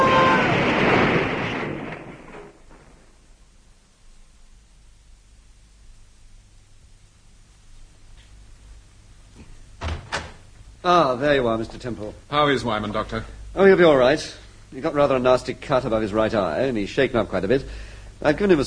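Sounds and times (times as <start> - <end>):
car crashing into another car: 0.0 - 3.3
speech: 10.8 - 18.6.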